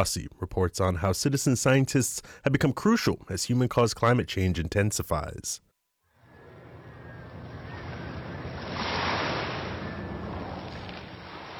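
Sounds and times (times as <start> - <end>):
speech: 0.0 - 5.7
wind brushing the microphone: 6.3 - 11.5
ocean waves crashing on a beach: 6.4 - 11.5.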